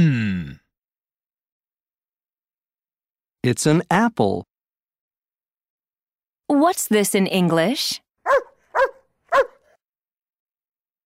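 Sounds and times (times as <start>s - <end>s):
speech: 3.4s - 4.5s, 6.5s - 8.5s
dog barking: 8.2s - 9.8s.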